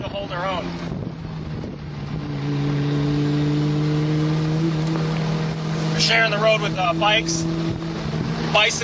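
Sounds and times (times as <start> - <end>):
Ferrari sports car engine droning while driving up a road: 0.0 - 8.8
speech: 0.2 - 1.0, 6.0 - 7.7, 8.5 - 8.8.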